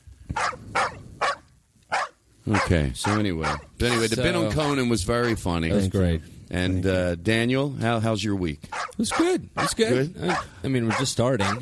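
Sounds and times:
dog barking: 0.3s - 4.2s, 8.7s - 11.6s
speech: 2.4s - 11.6s.

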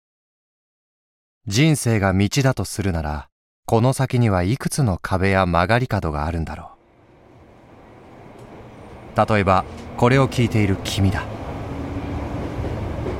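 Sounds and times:
speech: 1.5s - 6.8s, 9.2s - 11.4s
low rumble of a moving commuter train: 6.8s - 13.1s.

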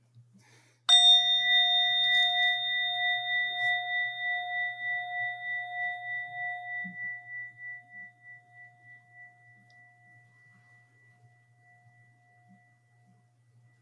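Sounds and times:
meditation bell ringing: 0.9s - 13.5s.

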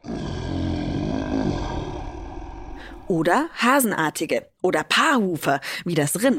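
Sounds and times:
lion roaring: 0.0s - 3.2s
speech: 3.1s - 6.3s.

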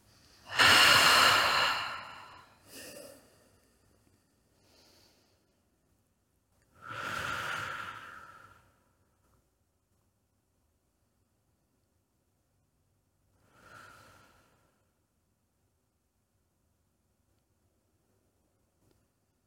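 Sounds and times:
person lying on their back breathing in deeply through the nose: 0.0s - 5.5s, 6.8s - 8.8s, 13.4s - 14.9s.

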